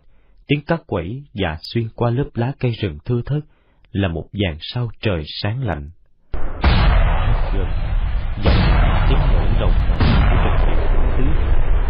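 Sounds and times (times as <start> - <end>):
speech: 0.5 - 6.0, 7.6 - 10.6
artillery shells exploding on the far side of a mountain range: 6.4 - 11.8.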